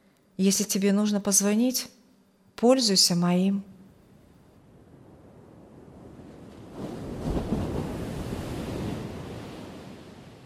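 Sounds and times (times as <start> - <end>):
speech: 0.4 - 2.0, 2.6 - 3.7
ocean waves crashing onto a sandy beach: 5.0 - 10.4.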